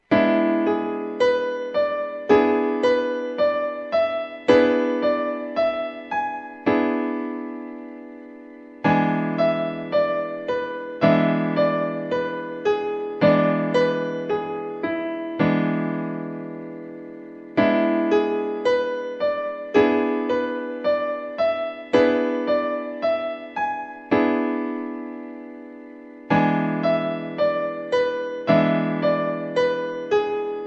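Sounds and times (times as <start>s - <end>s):
E7 piano chord: 0.0s - 30.6s.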